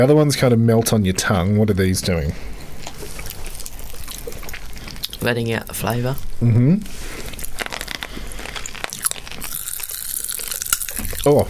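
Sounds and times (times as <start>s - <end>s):
speech: 0.0s - 2.5s, 5.2s - 7.2s, 11.2s - 11.4s
popping candy crackling while being chewed: 2.8s - 6.3s, 7.0s - 11.4s.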